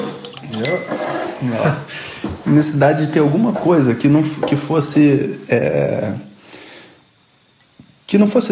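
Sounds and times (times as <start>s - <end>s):
glass kombucha bottle clinks: 0.2s - 0.9s
speech: 0.6s - 6.3s, 8.1s - 8.4s.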